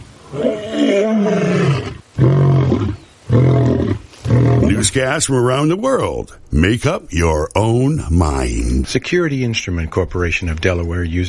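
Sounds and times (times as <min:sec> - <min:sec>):
speech: 0:00.3 - 0:01.5, 0:04.9 - 0:11.2
lion roaring: 0:00.3 - 0:04.8.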